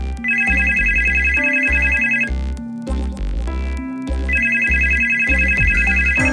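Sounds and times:
pulsing musical backdrop: 0.0s - 6.3s
telephone ringing in long electronic bursts: 0.2s - 2.3s, 4.4s - 6.3s.

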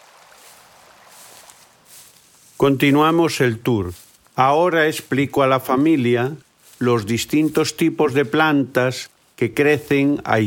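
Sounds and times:
water flowing in a small river: 0.0s - 2.2s
speech: 2.6s - 10.4s.

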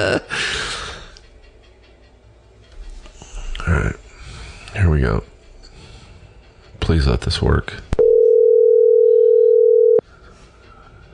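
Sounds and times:
speech: 0.0s - 0.3s, 7.0s - 7.9s
telephone ringing tone from an outgoing phone call: 8.0s - 10.0s.

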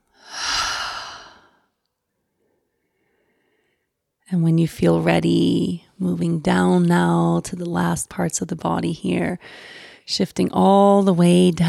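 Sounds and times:
deep slow breath in through the nose and out through the mouth: 0.1s - 1.7s, 2.4s - 4.0s, 9.4s - 10.0s
speech: 4.3s - 11.6s.

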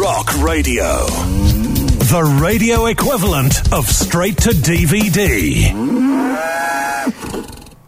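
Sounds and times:
speech: 0.2s - 7.6s
cow mooing: 1.2s - 2.1s, 5.7s - 7.2s.

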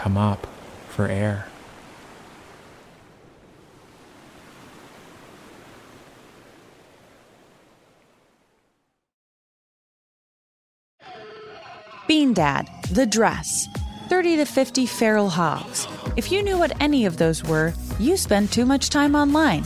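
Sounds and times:
speech: 0.0s - 1.5s, 12.1s - 19.6s
rushing creek water: 0.0s - 8.5s.

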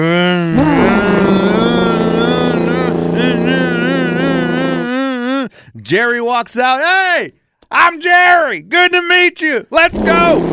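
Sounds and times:
wavering voice-like tone: 0.0s - 5.5s
boat engine starting and droning: 0.6s - 4.6s, 10.0s - 10.5s
speech: 5.9s - 10.5s.

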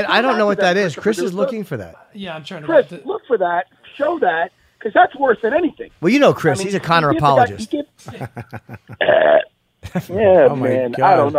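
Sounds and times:
speech: 0.0s - 11.3s
laughter: 7.2s - 9.1s, 9.8s - 10.7s
loud drawn-out belch: 9.0s - 9.5s.

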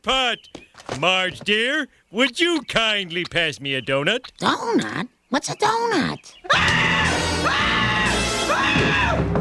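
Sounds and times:
speech: 0.0s - 7.8s
cartoon man screaming in terror: 6.5s - 9.3s.

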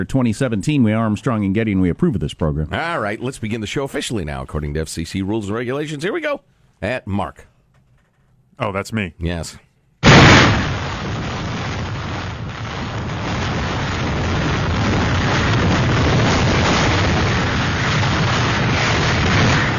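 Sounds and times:
speech: 0.0s - 7.5s, 8.6s - 9.7s
very strong wind at about 200 miles per hour: 10.0s - 19.7s.

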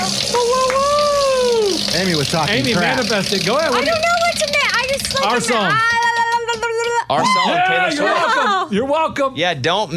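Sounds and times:
prize wheel spinning and ticking: 0.1s - 6.9s
speech: 2.0s - 5.9s, 7.1s - 9.9s.

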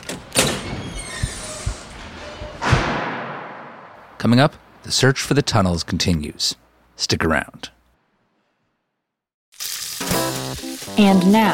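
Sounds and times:
door being rattled and tried with dull thumps and knocks: 0.0s - 3.2s
speech: 4.2s - 7.8s, 10.9s - 11.5s.

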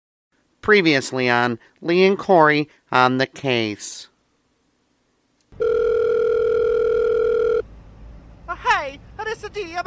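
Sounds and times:
speech: 0.6s - 4.1s, 8.8s - 9.8s
telephone ringing with steady electronic tone: 5.6s - 7.6s
voicemail greeting: 5.6s - 7.6s.

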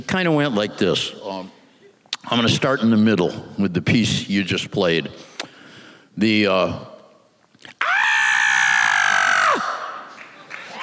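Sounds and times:
speech: 0.0s - 1.6s, 2.2s - 5.3s, 6.2s - 6.9s
man screaming: 7.8s - 9.8s.

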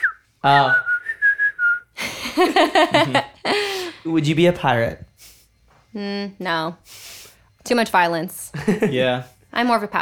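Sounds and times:
person whistling by inhaling: 0.0s - 2.0s
speech: 0.4s - 0.9s, 2.4s - 5.1s, 6.0s - 7.0s, 7.7s - 10.0s.

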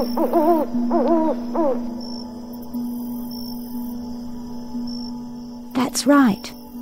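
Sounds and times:
owl hooting with wavering calls: 0.0s - 2.0s
speech: 0.0s - 2.1s, 5.9s - 6.6s.

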